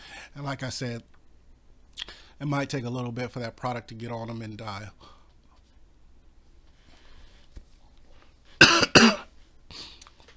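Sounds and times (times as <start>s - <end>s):
speech: 0.3s - 1.2s, 2.4s - 5.2s
throat clearing: 8.6s - 9.2s
person coughing: 8.6s - 9.3s.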